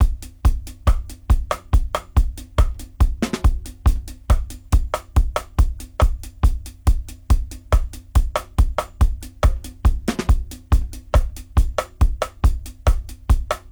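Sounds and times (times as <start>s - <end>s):
reggae drum loop: 0.0s - 13.6s.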